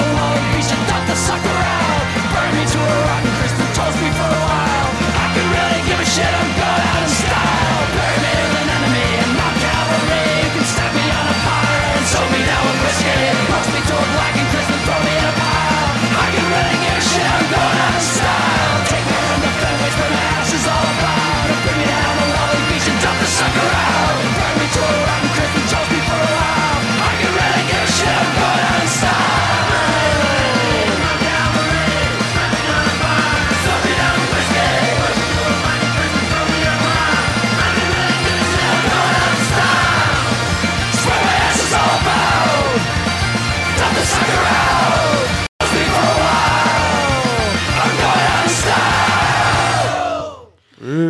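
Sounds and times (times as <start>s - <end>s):
several voices shouting and bawling the vocals: 0.0s - 43.0s, 43.8s - 50.5s
steady pounding beat: 0.0s - 50.1s
Irish band music: 0.0s - 50.4s.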